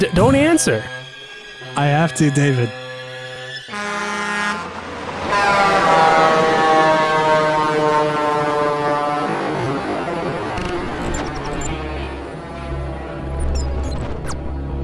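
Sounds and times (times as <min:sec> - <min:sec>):
speech: 0:00.0 - 0:01.0, 0:01.8 - 0:02.8
truck air horn blast: 0:03.7 - 0:09.4
low rumbling engine drone: 0:10.2 - 0:14.7.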